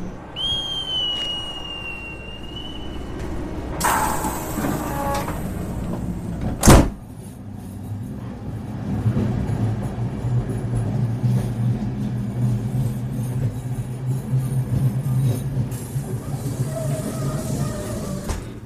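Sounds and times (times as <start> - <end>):
double-decker sleeper train rumbling as it pulls away: 0.0 - 18.6
whistle-like beep: 0.4 - 3.2
double-decker sleeper train door hiss: 0.4 - 7.1, 16.1 - 18.6
doors of a double-decker sleeper train thudding shut: 3.0 - 7.4, 16.2 - 18.6.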